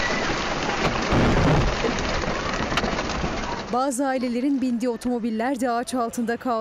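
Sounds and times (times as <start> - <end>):
heavy rain in a violent storm: 0.0 - 4.4
speech: 3.7 - 6.6.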